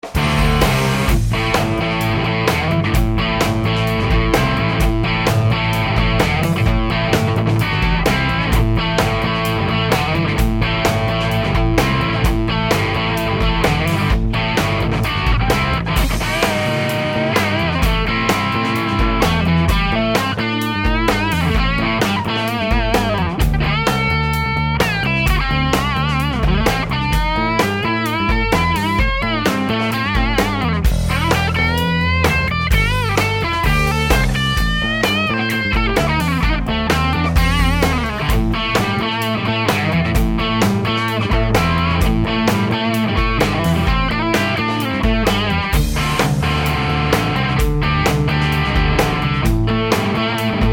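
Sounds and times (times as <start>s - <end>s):
high-gain Telecaster electric guitar on bridge pickup: 0.0s - 50.7s.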